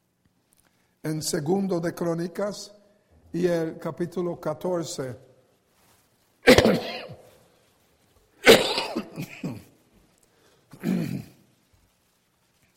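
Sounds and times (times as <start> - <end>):
speech: 1.0 - 5.3
person coughing into a microphone: 6.4 - 7.3, 8.4 - 9.8, 10.7 - 11.4.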